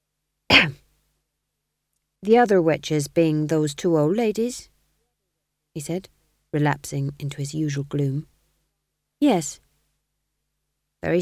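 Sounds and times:
man coughing: 0.5 - 0.8
speech: 2.2 - 4.7, 5.8 - 8.3, 9.2 - 9.6, 11.0 - 11.2.

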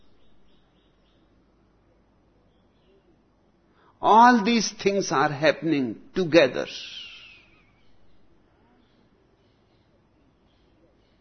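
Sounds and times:
birds chirping: 0.0 - 3.4, 6.8 - 11.1
steady noise: 0.0 - 11.1
speech: 4.0 - 7.0.

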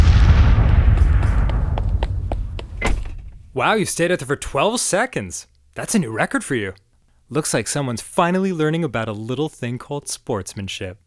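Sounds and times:
grenade explosion on a sports field: 0.0 - 3.6
sharp crackling pops: 0.0 - 3.9
speech: 3.6 - 11.0.

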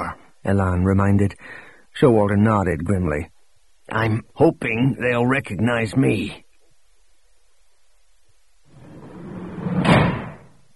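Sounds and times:
speech: 0.4 - 3.3, 3.9 - 6.4
portable toilet door swinging and slamming shut: 9.5 - 10.6.

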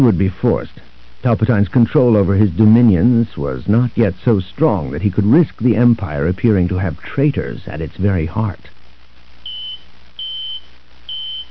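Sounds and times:
speech: 0.0 - 8.8
faint hiss: 0.0 - 11.5
personal communicator device beeping: 9.5 - 11.5.

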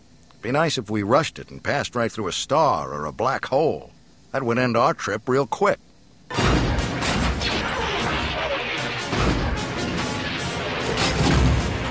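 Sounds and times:
speech: 0.4 - 6.6
loud explosions and booming blasts in a space battle: 6.3 - 11.9.

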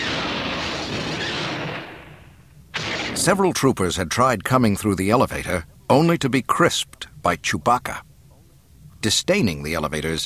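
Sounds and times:
loud rumbling barrage of explosions: 0.0 - 3.7
speech: 3.2 - 8.1, 9.0 - 10.2.

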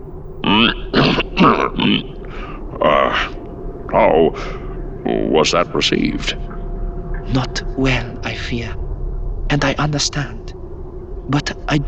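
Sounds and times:
person clearing throat with rough gravelly bursts: 0.4 - 3.3
speech: 1.4 - 2.2, 2.8 - 3.3, 3.9 - 6.5, 7.3 - 8.8, 9.5 - 10.4, 11.3 - 11.8.

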